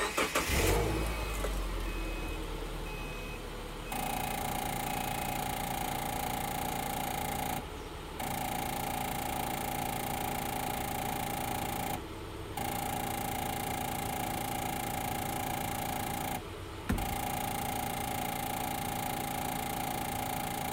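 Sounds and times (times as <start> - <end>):
car engine cranking and settling into a steady idle: 0.0 - 20.7.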